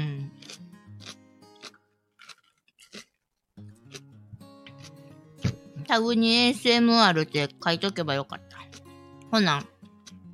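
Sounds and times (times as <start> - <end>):
chewing and crunching food: 0.1 - 5.1, 8.4 - 9.0
speech: 5.9 - 8.5, 9.3 - 9.7.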